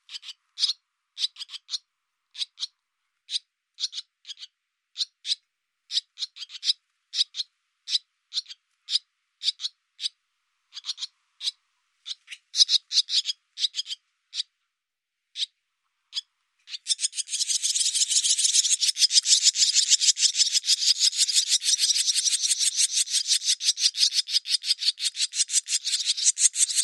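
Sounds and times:
barn swallow calls: 0.0 - 14.5, 16.1 - 26.8.

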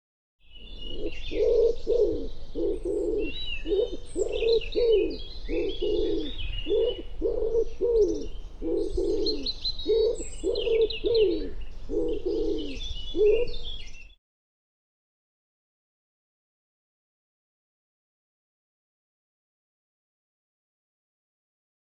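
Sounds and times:
bird cooing: 0.5 - 14.2.

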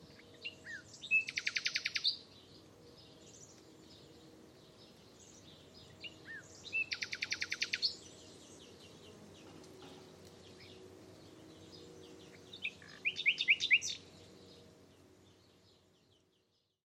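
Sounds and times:
faint low hum: 0.0 - 16.8
buzzy bird trills: 0.1 - 2.2, 5.2 - 9.0, 9.9 - 14.2.

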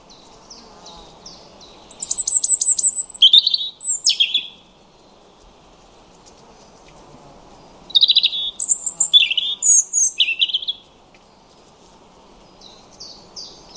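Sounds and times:
European robin singing: 0.0 - 5.1, 7.8 - 10.9, 12.4 - 13.7.

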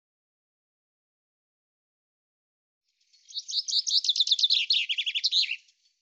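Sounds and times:
common chaffinch singing: 3.1 - 5.9.

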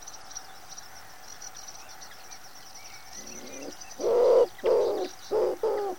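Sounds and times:
faint higher twitters: 0.0 - 5.9
common wood pigeon giving low husky coos: 3.2 - 5.9.

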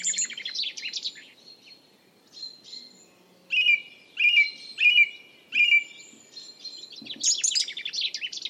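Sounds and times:
song thrush singing: 0.0 - 8.4.

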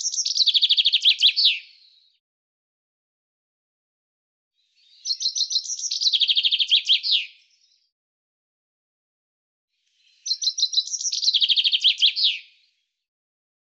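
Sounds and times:
common chaffinch singing: 0.0 - 1.9, 4.8 - 7.4, 10.1 - 12.5.

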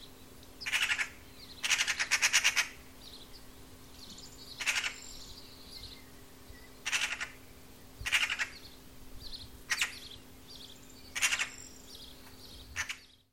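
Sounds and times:
faint steady hum: 0.0 - 13.3
bird calls in rapid pulsed chattering bursts: 0.6 - 2.8, 4.6 - 5.0, 6.8 - 7.4, 8.0 - 8.6, 9.7 - 10.2, 11.1 - 11.6, 12.7 - 13.1.

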